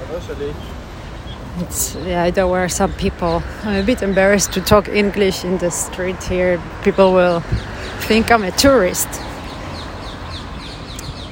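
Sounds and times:
birds chirping in short high calls: 0:00.0 - 0:11.3
outdoor noise: 0:00.0 - 0:11.3
speech: 0:00.1 - 0:00.8, 0:01.5 - 0:09.3.

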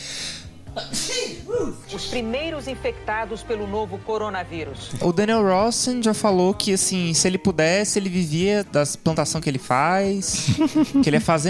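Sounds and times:
breathy exhale: 0:00.0 - 0:00.5
inhaling before a sneeze: 0:00.0 - 0:01.8
person sneezing: 0:00.0 - 0:01.8
speech: 0:00.8 - 0:11.4
laughter: 0:10.3 - 0:11.4.

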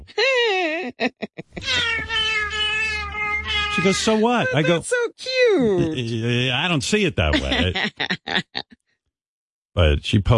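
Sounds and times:
speech: 0:00.9 - 0:02.5, 0:03.8 - 0:08.8, 0:09.8 - 0:10.3
cat meowing and yowling: 0:01.6 - 0:04.8
laughter: 0:03.8 - 0:04.8, 0:05.7 - 0:08.6.

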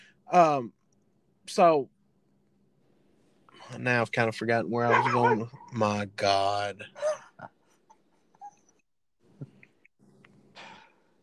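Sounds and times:
speech: 0:00.3 - 0:00.8, 0:01.5 - 0:01.9, 0:03.6 - 0:07.5
dog whining and whimpering: 0:04.9 - 0:05.8, 0:08.3 - 0:08.8.

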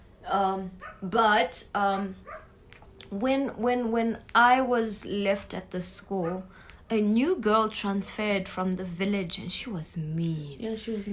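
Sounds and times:
speech: 0:00.4 - 0:02.2, 0:03.1 - 0:11.1
dog barking in high-pitched yipping bursts: 0:00.8 - 0:01.1, 0:02.0 - 0:02.6.

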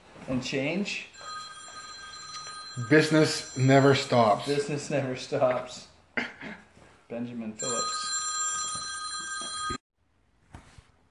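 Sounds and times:
speech: 0:00.3 - 0:01.3, 0:02.8 - 0:06.3, 0:07.2 - 0:07.8
telephone ringing with bright electronic trill: 0:01.2 - 0:04.8, 0:07.6 - 0:09.8.

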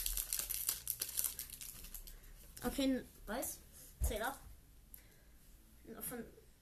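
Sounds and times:
foil trading card pack crinkling as it is torn open: 0:00.0 - 0:02.2
speech: 0:02.6 - 0:04.5, 0:05.9 - 0:06.4.

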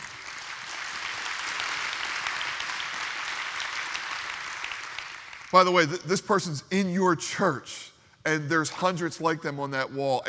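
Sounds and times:
large church crowd clapping: 0:00.0 - 0:05.8
speech: 0:05.5 - 0:10.2.

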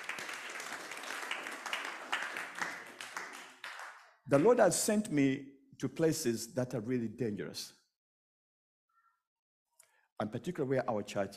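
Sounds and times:
crowd applauding: 0:00.0 - 0:04.6
speech: 0:04.3 - 0:07.8, 0:10.2 - 0:11.3.

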